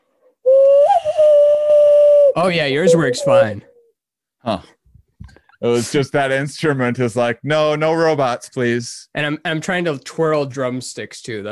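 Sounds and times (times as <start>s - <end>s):
person whistling one low sustained note: 0.5s - 3.8s
speech: 2.4s - 3.7s, 4.4s - 4.8s, 5.6s - 11.5s.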